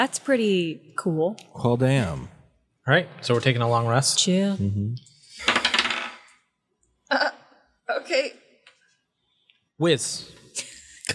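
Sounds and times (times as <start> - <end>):
speech: 0.0 - 5.5, 8.0 - 8.4, 9.8 - 10.7
dice clattering and tumbling across a hard tabletop during a role-playing game: 5.4 - 6.4.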